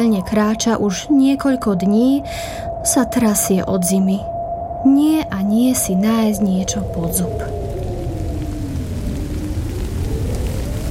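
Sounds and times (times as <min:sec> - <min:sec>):
speech: 0:00.0 - 0:07.7
faint sustained tone: 0:00.0 - 0:09.9
deep low rumble: 0:00.0 - 0:10.8
steady rain: 0:06.4 - 0:10.8.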